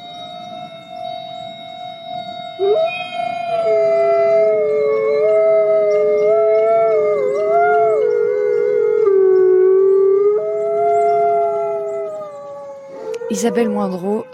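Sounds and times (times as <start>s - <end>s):
several wolves howling in chorus: 0.0s - 14.3s
speech: 13.4s - 14.3s.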